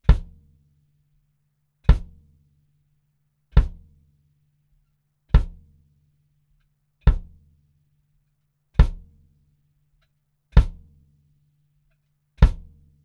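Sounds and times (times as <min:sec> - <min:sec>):
kick drum recorded with a D112 microphone at the rear: 0:00.0 - 0:00.6, 0:01.8 - 0:02.4, 0:03.5 - 0:04.1, 0:05.3 - 0:05.8, 0:07.0 - 0:07.6, 0:08.8 - 0:09.3, 0:10.5 - 0:11.0, 0:12.4 - 0:13.0.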